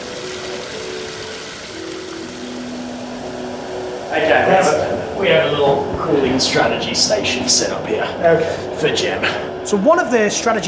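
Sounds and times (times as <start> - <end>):
water filling a bucket at a laboratory cooling station: 0.0 - 6.0
speech: 4.1 - 10.6.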